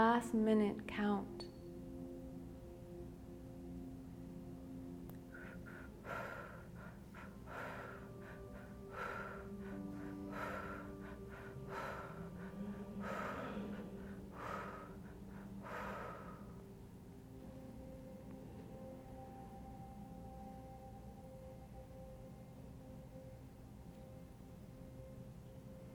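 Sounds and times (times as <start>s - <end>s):
speech: 0.0s - 1.5s
low sustained drone: 0.0s - 25.9s
heavy rhythmic breathing exercise: 5.1s - 20.3s.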